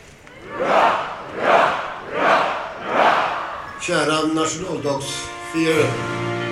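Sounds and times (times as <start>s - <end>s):
murmur of voices: 0.0s - 6.0s
large crowd shouting hurrah cheers in unison at a Swedish National Day celebration: 0.3s - 4.1s
speech: 3.9s - 6.2s.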